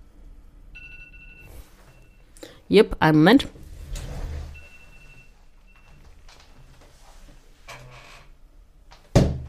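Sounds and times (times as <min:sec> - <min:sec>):
smartphone alarm ringing with a high electronic tone: 0:00.8 - 0:02.3, 0:04.6 - 0:06.1
speech: 0:02.7 - 0:03.6.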